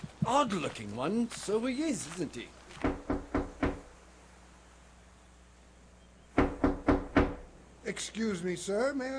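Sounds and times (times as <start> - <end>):
speech: 0.3 - 2.6, 7.9 - 9.1
visitor knocking on a wooden front door: 2.8 - 3.9, 6.4 - 7.4.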